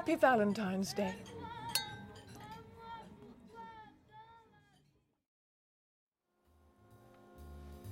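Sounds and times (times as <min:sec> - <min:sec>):
speech: 0:00.0 - 0:01.4
glasses clinking in a toast: 0:00.4 - 0:03.2.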